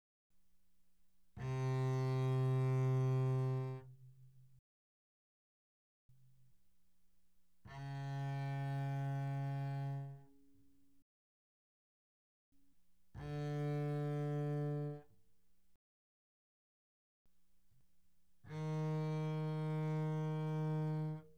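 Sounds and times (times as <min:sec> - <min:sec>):
double bass bowed arco mezzo forte on the G string: 0:01.4 - 0:03.9, 0:07.7 - 0:10.2, 0:13.2 - 0:15.0, 0:18.5 - 0:21.2.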